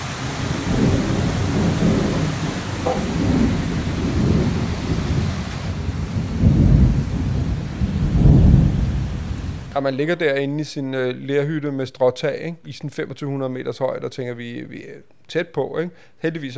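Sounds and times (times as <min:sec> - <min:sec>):
deep rolling thunder: 0:00.0 - 0:09.8
heavy rain in a thunderstorm: 0:00.0 - 0:09.8
speech: 0:09.8 - 0:16.5.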